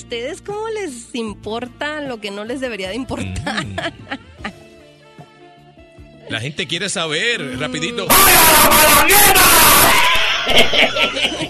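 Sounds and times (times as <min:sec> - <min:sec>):
speech: 0:00.0 - 0:04.6, 0:06.3 - 0:11.4
laughter: 0:03.4 - 0:04.6, 0:09.9 - 0:11.4
sudden loud harsh scream: 0:08.1 - 0:10.7.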